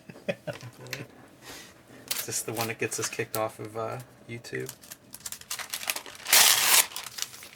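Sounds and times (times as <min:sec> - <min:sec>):
speech: 0:00.5 - 0:01.6, 0:02.3 - 0:04.9
thin tracing paper crinkling as it's handled: 0:04.6 - 0:07.5.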